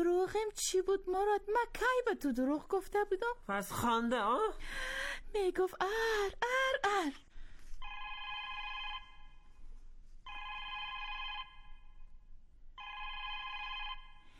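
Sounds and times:
speech: 0.0 - 7.3
telephone ringing with a bright electronic trill: 7.8 - 9.4, 10.3 - 12.0, 12.8 - 14.3.

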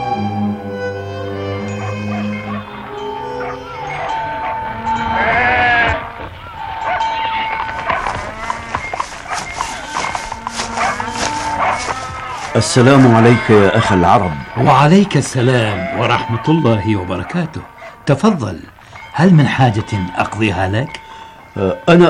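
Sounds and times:
busy background of animal noises: 1.3 - 22.0
shepherd's flock of sheep bleating: 1.7 - 22.0
speech: 12.6 - 22.0.

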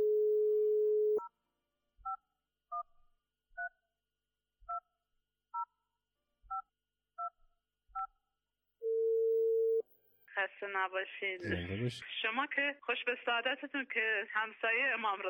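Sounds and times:
dial tone on a telephone handset: 0.0 - 1.2, 8.9 - 9.8
speech: 10.5 - 15.2.

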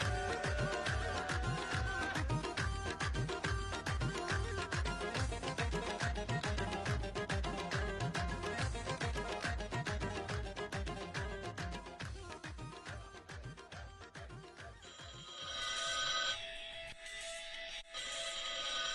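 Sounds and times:
busy music-like sounds: 0.0 - 15.0
telephone ringing in an insistent electronic pattern: 14.8 - 16.7, 18.0 - 18.9.

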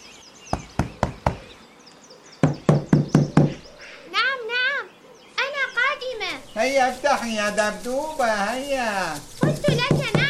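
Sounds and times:
faint birdsong: 0.0 - 10.2
knocking on a house door: 0.5 - 1.5, 2.4 - 3.6, 9.6 - 10.2
speech: 6.7 - 9.3.

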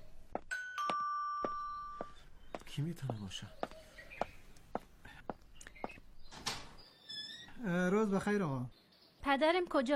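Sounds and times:
doorbell chiming with a two-tone ding-dong: 0.5 - 2.2
speech: 2.7 - 3.7, 7.6 - 9.9.

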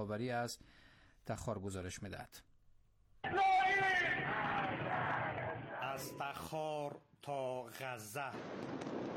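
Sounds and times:
speech: 0.0 - 2.5, 6.0 - 9.0
protest crowd shouting and chanting: 3.2 - 6.6.

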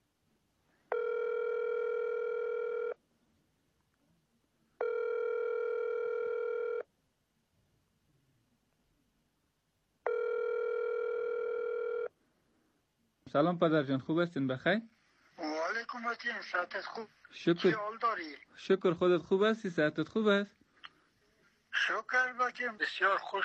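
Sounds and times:
ringback tone of an outgoing telephone call: 0.9 - 3.0, 4.8 - 6.8, 10.1 - 12.1
speech: 13.3 - 15.0, 16.0 - 20.6, 21.9 - 23.4.

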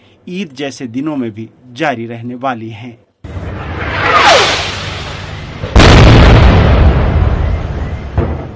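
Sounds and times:
speech: 0.2 - 3.0
descending whistle of an incoming rocket: 3.3 - 8.5
loud rocket explosion: 3.3 - 8.5
rumbling debris: 3.4 - 8.5.

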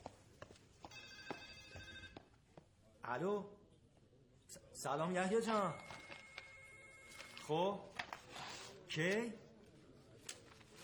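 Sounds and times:
telephone ringing indoors: 0.9 - 2.3, 5.5 - 7.7
speech: 3.1 - 3.6, 4.8 - 5.9, 7.5 - 8.0, 9.0 - 9.4.

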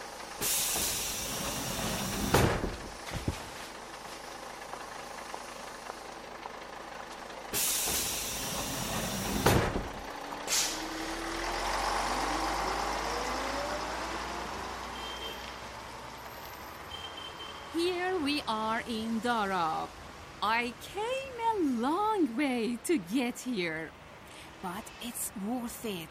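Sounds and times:
bus engine idling rumble: 0.0 - 26.0
bus air brakes hissing: 0.3 - 2.6, 7.5 - 9.7, 10.4 - 11.0
speech: 18.8 - 19.9, 20.5 - 21.2, 21.8 - 24.0, 24.6 - 26.0.

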